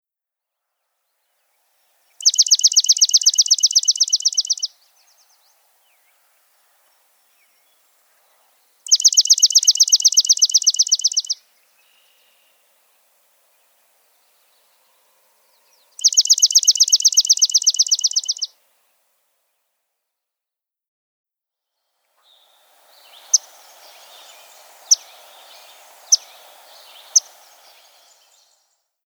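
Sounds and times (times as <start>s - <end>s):
swamp sparrow calling: 2.2s - 8.0s, 8.8s - 12.8s, 13.5s - 18.5s, 22.3s - 28.7s.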